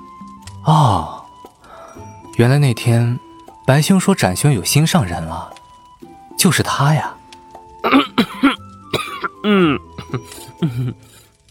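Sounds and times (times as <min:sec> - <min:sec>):
speech: 0:00.6 - 0:01.2, 0:02.0 - 0:05.6, 0:06.4 - 0:07.2, 0:07.9 - 0:08.4, 0:09.4 - 0:11.3
people coughing after choking on tea: 0:07.8 - 0:11.0.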